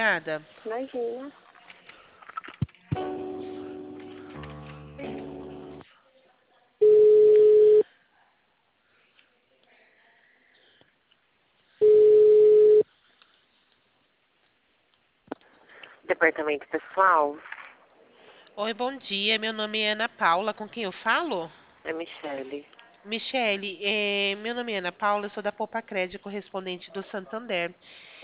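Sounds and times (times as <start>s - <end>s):
speech: 0.0s - 1.4s, 16.2s - 17.6s, 18.6s - 28.2s
telephone ringing tones as a call is transferred: 6.8s - 7.8s, 11.8s - 12.8s.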